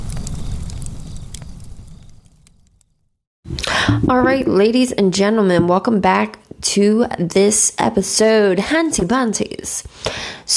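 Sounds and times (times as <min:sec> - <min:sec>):
campfire crackling: 0:00.0 - 0:03.0
speech: 0:03.9 - 0:10.5.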